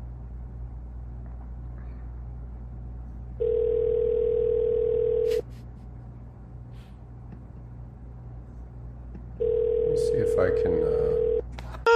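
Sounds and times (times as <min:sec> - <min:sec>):
low hum: 0:00.0 - 0:11.9
phone line ring tone: 0:03.4 - 0:05.3, 0:09.4 - 0:11.4
speech: 0:10.4 - 0:11.1.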